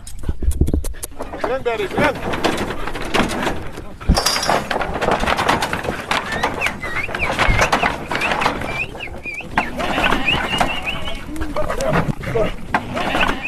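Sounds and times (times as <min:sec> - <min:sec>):
sheep hooves shuffling: 0:00.0 - 0:13.4
people calling out: 0:06.3 - 0:13.4
flock of sheep bleating: 0:09.6 - 0:11.4, 0:12.8 - 0:13.4.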